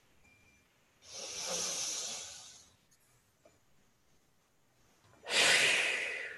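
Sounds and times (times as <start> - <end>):
strong breathy exhale close to the microphone: 1.0 - 2.7, 5.2 - 6.3
long airy inhale: 1.0 - 2.8, 5.2 - 6.3.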